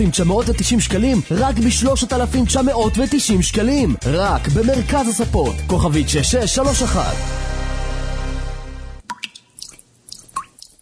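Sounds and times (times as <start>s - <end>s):
speech: 0.0s - 7.5s
dripping water tap: 9.0s - 10.8s.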